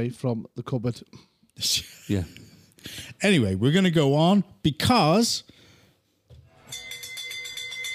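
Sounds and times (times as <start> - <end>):
speech: 0.0 - 5.6
bells ringing rapidly: 6.6 - 7.9.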